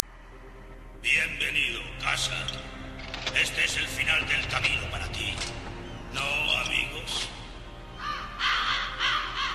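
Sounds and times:
speech: 0:02.1 - 0:07.4
crows cawing: 0:07.9 - 0:09.5.

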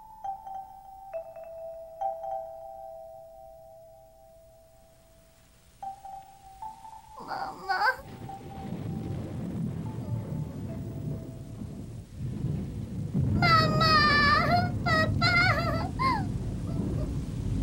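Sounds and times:
steady rain: 0:04.9 - 0:17.6
thunder rumbling: 0:06.7 - 0:17.6
high wavering vocal cry: 0:06.9 - 0:08.7, 0:13.4 - 0:17.2.

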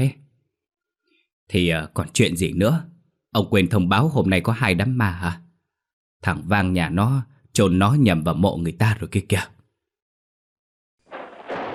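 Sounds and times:
speech: 0:00.0 - 0:00.2, 0:01.5 - 0:05.4, 0:06.2 - 0:09.6
thunder clap from a lightning strike out of a sunny sky: 0:11.1 - 0:11.7.

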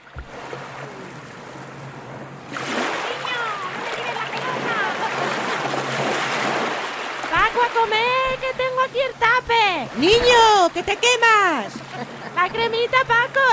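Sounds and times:
sea waves washing onto a beach: 0:00.0 - 0:13.5
laughter: 0:03.8 - 0:05.9, 0:10.1 - 0:13.5
speech: 0:09.8 - 0:11.8, 0:12.4 - 0:13.5.

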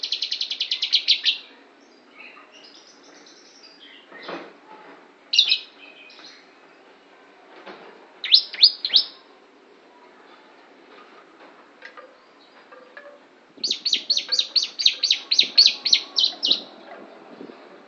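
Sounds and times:
lovebird imitating the song of the Javan prinia: 0:00.0 - 0:04.2, 0:05.3 - 0:06.8, 0:08.2 - 0:09.2, 0:13.6 - 0:16.8.

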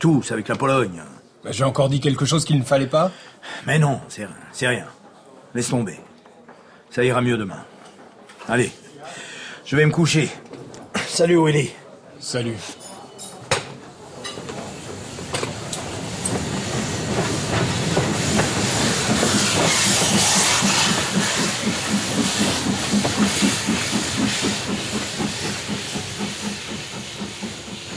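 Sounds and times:
speech: 0:00.0 - 0:06.1, 0:06.9 - 0:07.7, 0:08.5 - 0:10.6, 0:11.2 - 0:12.8
rumbling rail noise inside a freight wagon standing in a station in Treblinka, Poland: 0:14.0 - 0:27.9
fast regular pulsing: 0:16.4 - 0:27.9.

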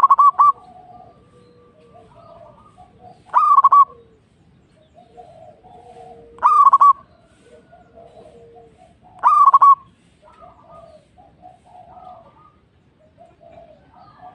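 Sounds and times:
zebra dove rolling stuttering coo: 0:00.0 - 0:14.3.

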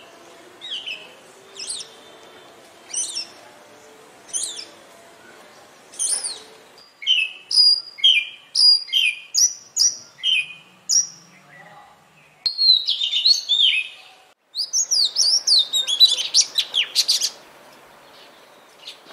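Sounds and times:
Oriental magpie-robin giving sharp high notes and slurred whistles: 0:00.0 - 0:02.1, 0:02.9 - 0:03.4, 0:04.3 - 0:11.6, 0:12.4 - 0:17.4
faint background hiss: 0:00.0 - 0:19.1.

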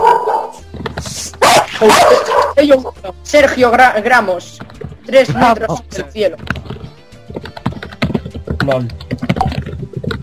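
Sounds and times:
dog barking: 0:00.0 - 0:00.6, 0:01.4 - 0:02.6
speech: 0:01.8 - 0:06.6, 0:08.7 - 0:09.2.

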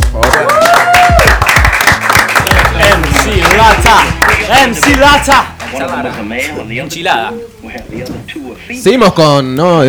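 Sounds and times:
loud dense crowd applause: 0:00.0 - 0:06.8
speech: 0:04.9 - 0:09.8.

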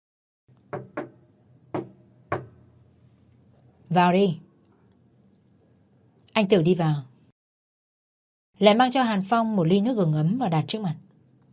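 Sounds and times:
speech: 0:00.7 - 0:01.0, 0:03.9 - 0:04.4, 0:06.4 - 0:07.1, 0:08.6 - 0:11.0
long slender fingers tapping on a table: 0:00.7 - 0:02.6.

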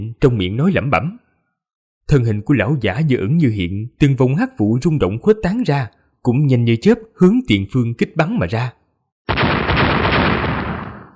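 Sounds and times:
speech: 0:00.0 - 0:01.2, 0:02.1 - 0:09.5
series of explosions: 0:09.3 - 0:11.1.

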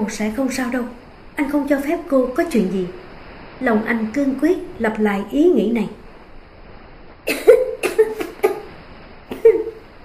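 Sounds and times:
speech: 0:00.0 - 0:03.0, 0:03.6 - 0:06.0
woman coughing up seawater: 0:07.3 - 0:08.7.

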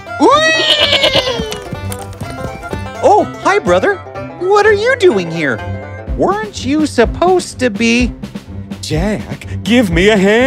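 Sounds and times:
speech: 0:00.2 - 0:00.5, 0:03.2 - 0:08.2, 0:08.9 - 0:10.4
goat bleating: 0:00.4 - 0:01.8.

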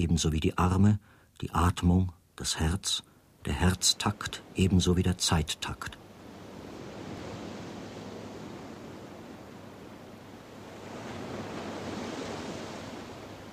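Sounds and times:
speech: 0:00.0 - 0:06.0
waves of a dark sea rolling in: 0:03.4 - 0:13.5.

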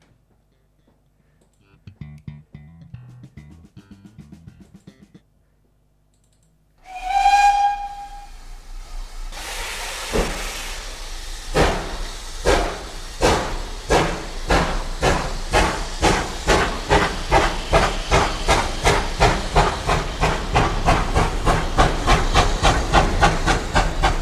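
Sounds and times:
steam train whistle: 0:06.8 - 0:11.0
steam train hissing steam: 0:06.9 - 0:24.2.

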